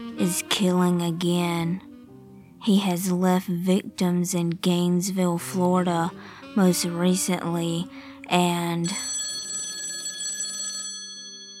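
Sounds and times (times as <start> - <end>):
speech: 0.2 - 1.9, 2.6 - 9.1
telephone bell ringing: 8.8 - 11.5.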